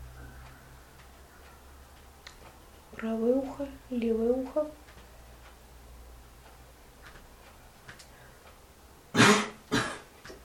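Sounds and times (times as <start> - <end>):
speech: 3.0 - 4.8
person coughing harshly: 9.1 - 10.1
faint throat-clearing rasp: 9.2 - 10.1.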